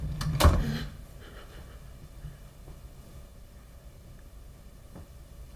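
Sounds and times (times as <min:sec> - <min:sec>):
door opening with a heavy clunk: 0:00.1 - 0:00.8.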